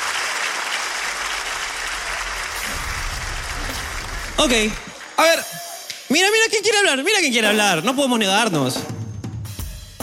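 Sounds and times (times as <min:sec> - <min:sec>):
audience applause: 0:00.0 - 0:05.9
speech: 0:04.4 - 0:08.9.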